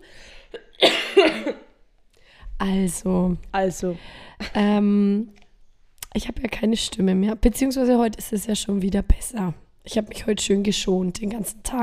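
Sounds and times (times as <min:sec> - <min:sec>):
short raspy cough: 0:00.5 - 0:01.8
speech: 0:01.2 - 0:01.7, 0:02.6 - 0:05.4, 0:06.1 - 0:11.8.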